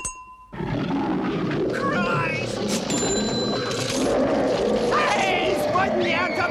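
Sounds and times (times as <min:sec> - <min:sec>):
Bengal tiger roaring and snarling: 0:00.5 - 0:02.9, 0:04.0 - 0:06.4
brief bell-like chime: 0:02.9 - 0:03.8.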